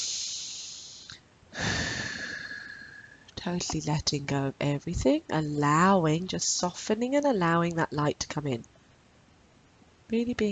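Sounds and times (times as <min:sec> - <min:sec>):
slow deep breathing in and out: 0:00.0 - 0:03.3
speech: 0:03.4 - 0:08.7, 0:10.1 - 0:10.5.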